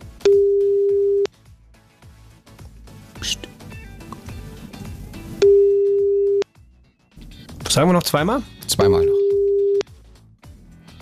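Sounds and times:
telephone ringing tone while calling: 0:00.3 - 0:01.3, 0:05.4 - 0:06.4, 0:09.1 - 0:09.8
speech: 0:07.7 - 0:09.2.

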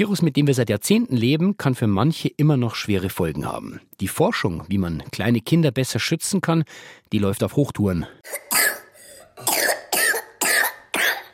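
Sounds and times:
speech: 0:00.0 - 0:08.7
harsh forceful coughing: 0:08.2 - 0:11.3.

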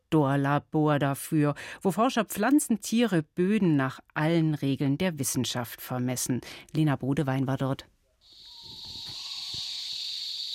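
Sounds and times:
speech: 0:00.1 - 0:07.9
loud steady high-pitched insect drone: 0:08.2 - 0:10.5
faint thin whistle: 0:08.5 - 0:10.5.

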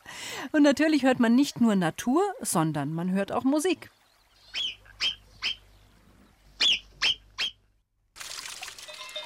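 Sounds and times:
speech: 0:00.4 - 0:04.0
Alpine marmot whistles in the mountains: 0:06.6 - 0:07.6.

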